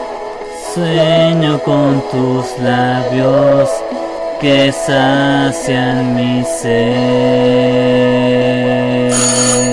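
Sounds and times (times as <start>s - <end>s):
speech: 0.8s - 9.6s
loud electronic doorbell ringing: 9.1s - 9.7s.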